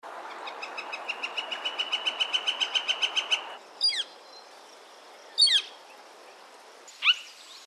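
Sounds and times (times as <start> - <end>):
yellow-shafted flicker calling: 0.3 - 4.5, 5.2 - 6.0, 6.9 - 7.6.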